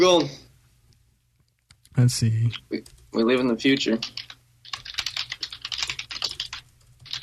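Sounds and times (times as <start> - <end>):
speech: 0.0 - 0.4, 2.0 - 4.2
computer keyboard typing: 1.7 - 7.2.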